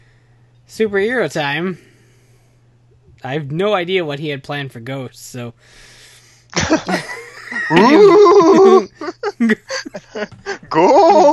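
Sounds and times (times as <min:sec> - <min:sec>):
speech: 0:00.7 - 0:01.9, 0:03.2 - 0:11.3
laughter: 0:06.6 - 0:11.3
person imitating goat bleats: 0:07.7 - 0:09.0.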